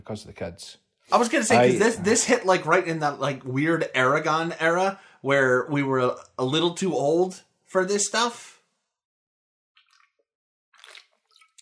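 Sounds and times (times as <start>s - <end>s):
speech: 0.0s - 8.5s
person drinking water with sips and gulps: 10.8s - 11.6s.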